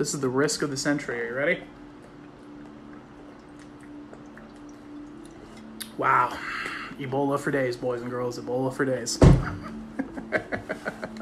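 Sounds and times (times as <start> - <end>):
speech: 0.0 - 1.8, 6.0 - 11.0
soft water drips: 0.1 - 8.5
water from Italy pouring into a container: 2.2 - 7.0.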